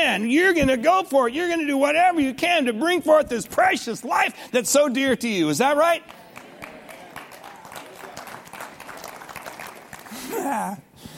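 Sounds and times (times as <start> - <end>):
speech: 0.1 - 6.2, 10.4 - 10.8
crowd clapping in a large room: 5.8 - 10.8.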